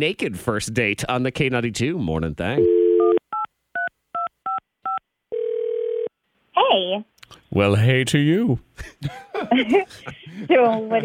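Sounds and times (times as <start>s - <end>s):
speech: 0.0s - 2.8s, 7.6s - 11.0s
steady continuous phone tone: 2.6s - 6.1s
laughter: 8.8s - 11.0s.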